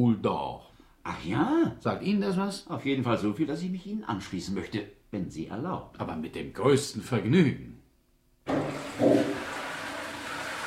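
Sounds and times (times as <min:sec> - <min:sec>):
speech: 0:00.0 - 0:07.7, 0:08.5 - 0:09.4
bistro toilet flushing from its overhead cistern: 0:08.5 - 0:10.6.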